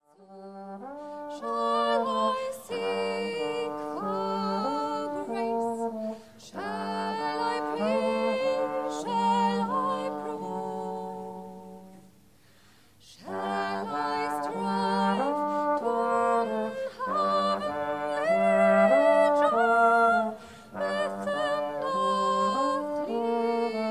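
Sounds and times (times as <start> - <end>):
choral singing: 0.0 - 12.0, 13.0 - 23.8.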